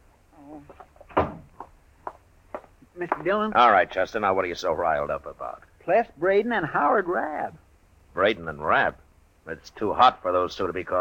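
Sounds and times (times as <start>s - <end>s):
speech: 0.5s - 0.9s, 3.0s - 7.6s, 8.2s - 10.9s
door pulled shut: 1.1s - 1.5s.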